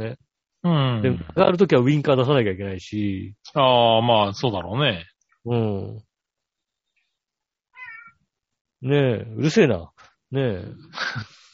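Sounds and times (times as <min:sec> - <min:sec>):
speech: 0:00.0 - 0:06.1, 0:08.8 - 0:11.4
single cat meow drawn out: 0:07.8 - 0:08.2.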